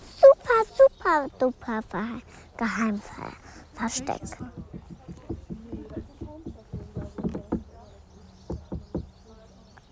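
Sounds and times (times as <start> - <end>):
voices murmuring: 0.0 - 9.9
speech: 1.1 - 5.2
people knocking on a stone: 4.0 - 7.8, 8.5 - 9.1.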